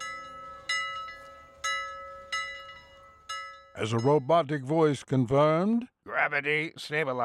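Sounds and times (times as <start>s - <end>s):
metallic bell struck and clanging: 0.0s - 4.7s
speech: 3.8s - 7.2s.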